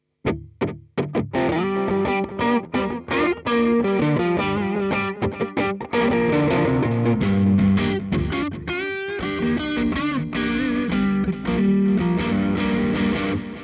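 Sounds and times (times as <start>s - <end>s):
rock tone lead guitar with delay: 0.3s - 13.6s.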